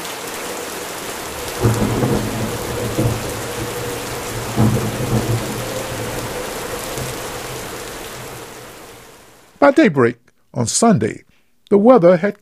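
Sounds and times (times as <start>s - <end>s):
thunder rumbling: 0.0s - 9.6s
steady rain: 0.0s - 9.7s
speech: 9.6s - 12.4s.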